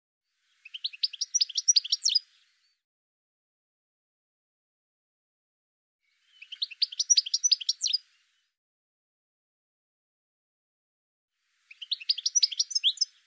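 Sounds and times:
bird twittering chirps: 0:00.5 - 0:02.8, 0:06.2 - 0:08.1, 0:11.7 - 0:13.2.

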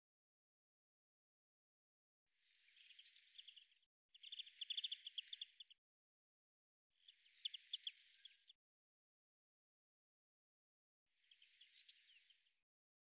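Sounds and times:
Eurasian blue tit calling: 0:02.7 - 0:03.6, 0:04.2 - 0:05.7, 0:07.1 - 0:08.4, 0:11.4 - 0:12.2.

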